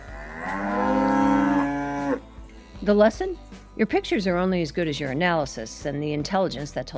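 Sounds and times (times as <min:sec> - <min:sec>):
cow mooing: 0:00.0 - 0:02.2
speech: 0:02.9 - 0:06.9.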